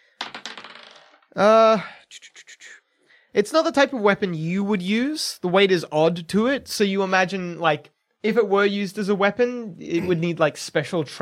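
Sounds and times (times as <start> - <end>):
dice rolled across a surface: 0.1 - 1.4
speech: 1.3 - 2.3, 3.4 - 11.2.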